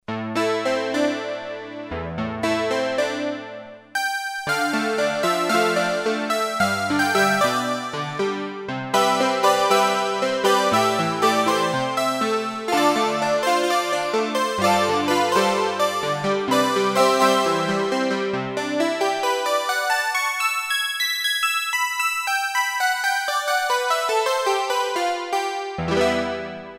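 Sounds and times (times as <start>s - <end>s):
Roland Juno-60 synthesizer harpsichord preset: 0.2s - 26.7s.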